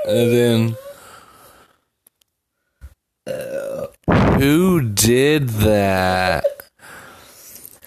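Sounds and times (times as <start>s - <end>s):
speech: 0.1s - 0.8s, 4.4s - 6.5s
voice imitating a sloth farting: 3.3s - 4.5s.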